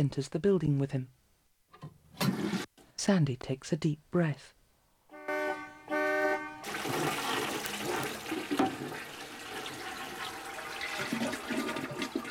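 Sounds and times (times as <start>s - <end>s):
speech: 0.0s - 1.2s, 3.0s - 4.6s
car horn honking: 5.1s - 7.2s
toilet flushing: 6.6s - 12.2s.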